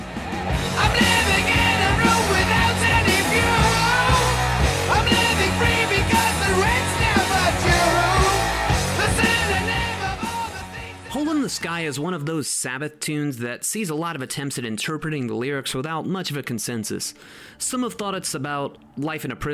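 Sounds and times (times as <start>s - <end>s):
loud dense heavy rock music: 0.0s - 11.6s
distorted guitars: 0.0s - 11.7s
speech: 11.3s - 19.5s.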